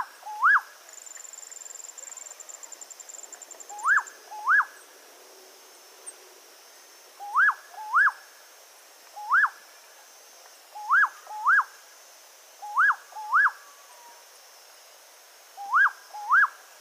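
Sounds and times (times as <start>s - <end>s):
nightjar calling with upslurred whistles: 3.7s - 4.8s, 7.2s - 8.2s, 12.6s - 14.1s, 15.6s - 16.6s.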